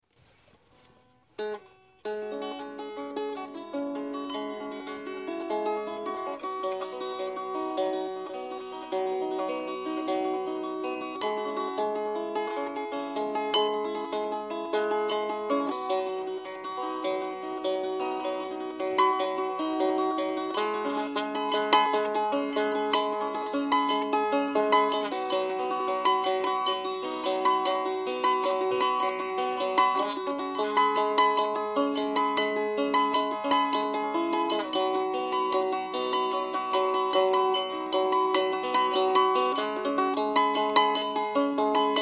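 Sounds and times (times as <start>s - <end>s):
banjo drone: 1.4s - 42.0s.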